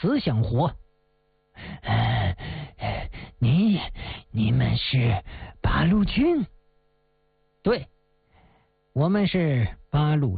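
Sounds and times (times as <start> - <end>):
speech: 0.0 - 0.8, 3.4 - 6.6, 7.6 - 7.9, 9.0 - 10.3
old man panting heavily after a cloth gag is pulled from his mouth: 1.6 - 4.3.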